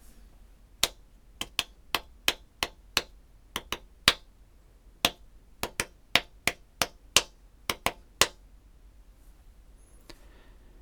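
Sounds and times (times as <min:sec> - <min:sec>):
rhythmic pattern of percussive hits played by hand: 0:00.8 - 0:04.3, 0:05.0 - 0:08.4.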